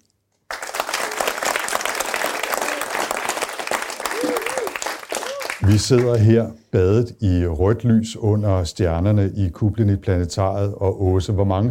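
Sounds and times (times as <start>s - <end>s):
live audience applauding in a planetarium: 0.5s - 6.3s
faint voices and cheers from a planetarium audience: 2.4s - 3.1s, 4.0s - 5.6s
speech: 5.6s - 11.6s.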